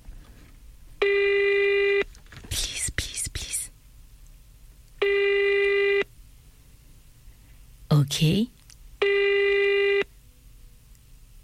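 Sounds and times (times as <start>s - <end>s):
electronic phone ringing tone: 1.0s - 2.1s, 5.0s - 6.1s, 9.0s - 10.1s
speech: 8.0s - 8.6s.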